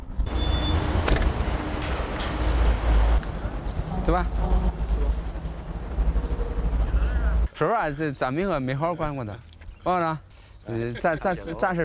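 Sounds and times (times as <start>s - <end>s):
car being driven with engine and road noise: 0.0s - 7.6s
speech: 4.1s - 4.8s, 7.6s - 11.8s.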